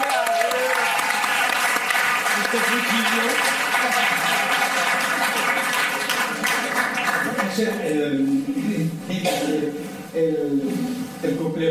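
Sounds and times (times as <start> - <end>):
live audience applauding: 0.0 - 7.8
speech: 2.5 - 3.5, 7.6 - 11.7.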